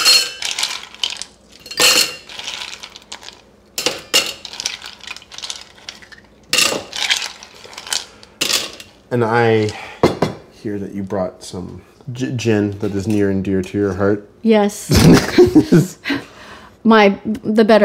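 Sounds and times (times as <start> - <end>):
ice cubes dropped into a metal cocktail shaker: 0.0 - 8.9
speech: 9.1 - 9.9, 10.6 - 16.0, 16.9 - 17.8.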